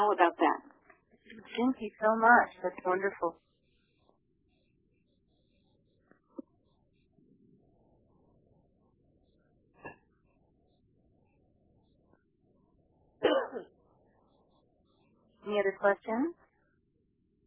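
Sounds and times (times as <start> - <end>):
speech: 1.6 - 3.5, 15.5 - 16.4
person coughing: 13.2 - 13.7.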